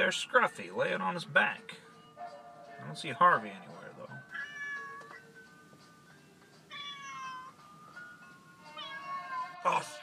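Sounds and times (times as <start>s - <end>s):
faint hiss: 0.0s - 10.0s
speech: 0.1s - 1.8s, 2.8s - 4.1s
cat meowing loudly and insistently: 4.3s - 5.2s, 6.7s - 7.6s, 8.6s - 9.9s.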